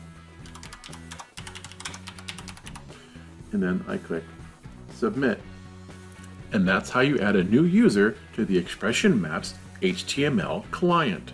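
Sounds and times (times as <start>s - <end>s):
rapid typing on a computer keyboard entering a web form: 0.4s - 2.9s
speech: 3.5s - 4.4s, 5.0s - 5.5s, 6.5s - 11.3s.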